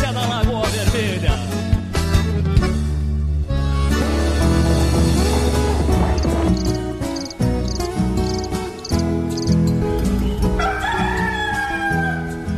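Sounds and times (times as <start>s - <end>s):
loud dense instrumental music: 0.0s - 12.5s
speckled rooster crowing: 10.5s - 12.5s.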